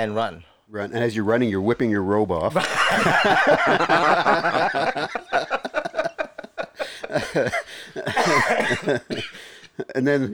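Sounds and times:
speech: 0:00.0 - 0:05.7, 0:07.1 - 0:10.3
laughter: 0:02.5 - 0:10.0
person coughing harshly: 0:07.6 - 0:09.5.

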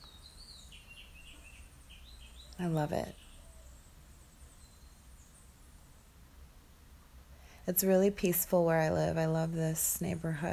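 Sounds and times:
birds chirping in a quiet residential neighborhood: 0:00.0 - 0:06.2
soft steady hiss: 0:00.0 - 0:10.5
speech: 0:02.6 - 0:03.2, 0:07.7 - 0:10.5.

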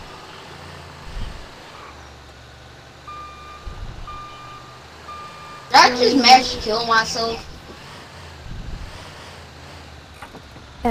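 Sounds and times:
heavy truck engine rumbling: 0:00.0 - 0:10.8
truck reversing beeps: 0:03.1 - 0:06.0
speech: 0:05.7 - 0:07.5.

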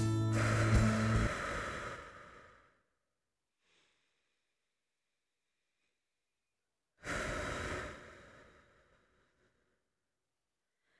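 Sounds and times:
slow deep breathing: 0:00.2 - 0:03.0, 0:03.5 - 0:04.6, 0:07.0 - 0:10.0, 0:10.7 - 0:10.9.

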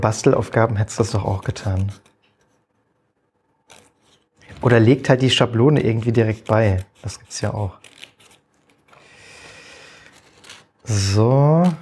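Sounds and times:
speech: 0:00.0 - 0:02.1, 0:04.6 - 0:08.0, 0:10.9 - 0:11.8
scissors cutting paper for a children's craft: 0:03.6 - 0:04.7, 0:05.7 - 0:09.0, 0:09.9 - 0:11.8.

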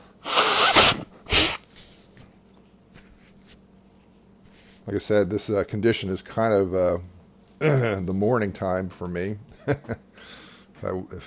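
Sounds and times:
person blowing nose: 0:00.2 - 0:01.7
speech: 0:04.9 - 0:10.0, 0:10.8 - 0:11.2.

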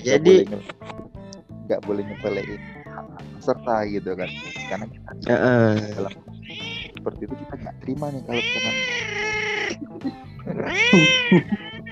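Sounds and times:
speech: 0:00.0 - 0:00.8, 0:01.7 - 0:06.3, 0:07.0 - 0:11.6
cat meowing: 0:02.0 - 0:04.9, 0:05.9 - 0:07.0, 0:08.3 - 0:09.8, 0:10.6 - 0:11.9
laughter: 0:09.6 - 0:11.9.

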